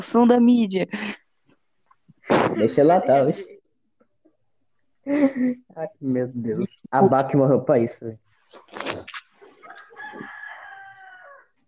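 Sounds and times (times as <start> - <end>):
speech: 0.0 - 1.2, 2.5 - 3.6, 5.0 - 8.9
rooster crowing: 9.6 - 11.6.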